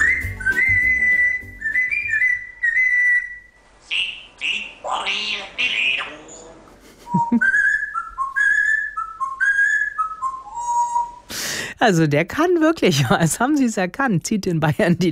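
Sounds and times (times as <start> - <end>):
Congo grey parrot whistling a melody: 0.0 - 4.7, 7.1 - 11.2
Congo grey parrot squawky chatter: 3.9 - 6.6
speech: 7.1 - 7.6, 11.8 - 15.0.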